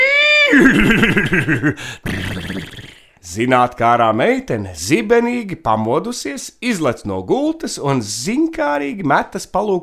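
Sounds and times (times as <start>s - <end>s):
laughter: 0.5s - 2.2s
speech: 0.5s - 9.8s
horse neighing: 2.0s - 3.0s.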